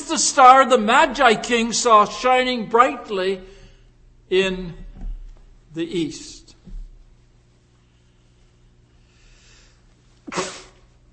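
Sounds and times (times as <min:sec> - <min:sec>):
faint steady hum: 0:00.0 - 0:11.1
speech: 0:00.1 - 0:03.5, 0:04.3 - 0:04.8, 0:05.8 - 0:06.4, 0:10.3 - 0:10.6
person sneezing after breathy intake: 0:10.2 - 0:10.9.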